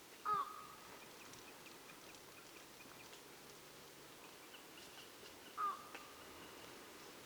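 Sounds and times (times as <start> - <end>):
Eurasian bittern calling: 0.1 - 3.3, 4.1 - 7.2.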